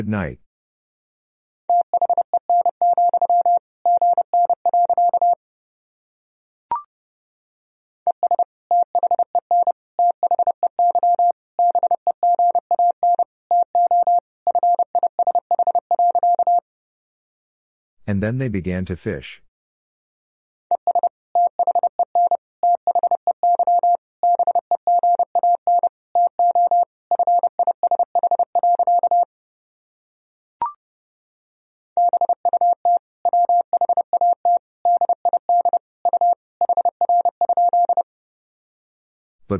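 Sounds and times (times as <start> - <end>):
speech: 0.0 - 0.4, 18.1 - 19.5
Morse code beeps at 30 words per minute: 1.7 - 5.4, 8.1 - 16.6, 20.8 - 29.3, 32.0 - 38.0.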